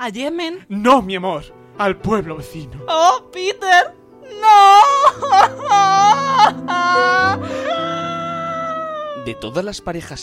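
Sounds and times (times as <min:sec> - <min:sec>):
speech: 0:00.0 - 0:07.6, 0:09.2 - 0:10.2
woman crying in loud exaggerated wails: 0:02.9 - 0:09.6.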